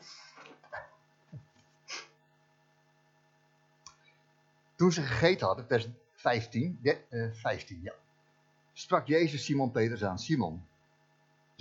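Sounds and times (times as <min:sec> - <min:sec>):
person sniffling: 0:01.9 - 0:02.2
speech: 0:04.8 - 0:08.0, 0:08.8 - 0:10.7.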